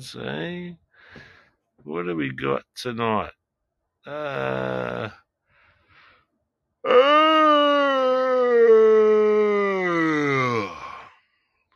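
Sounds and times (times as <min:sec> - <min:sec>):
speech: 0:00.0 - 0:03.4, 0:04.0 - 0:05.2, 0:06.8 - 0:07.5
person yawning: 0:04.1 - 0:05.2, 0:06.8 - 0:11.1.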